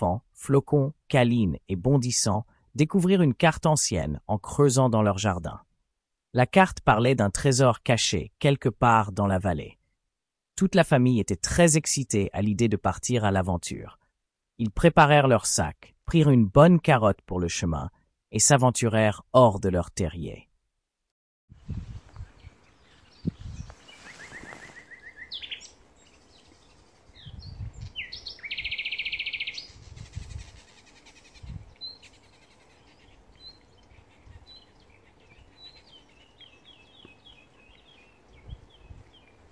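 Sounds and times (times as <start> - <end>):
speech: 0.0 - 5.7, 6.3 - 9.8, 10.6 - 14.0, 14.6 - 20.5
several birds chirping and singing in a forest: 22.0 - 39.4
soft rustling: 23.5 - 25.2.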